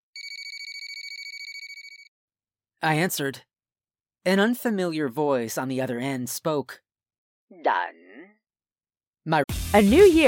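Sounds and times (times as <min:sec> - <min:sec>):
telephone ringing with a high-pitched electronic trill: 0:00.2 - 0:02.1
speech: 0:02.8 - 0:03.5, 0:04.2 - 0:06.8, 0:07.5 - 0:08.0, 0:09.2 - 0:10.2.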